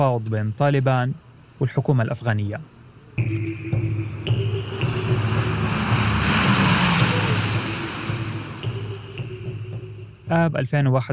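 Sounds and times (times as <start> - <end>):
speech: 0.0 - 3.8, 10.3 - 11.1
military airplane engines droning during takeoff from Kabul airport: 2.6 - 10.3.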